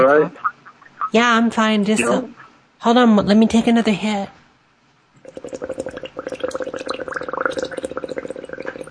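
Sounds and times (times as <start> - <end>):
speech: 0.0 - 0.5, 1.1 - 4.4, 5.3 - 5.9
person blowing through a straw into a drink: 5.2 - 8.9.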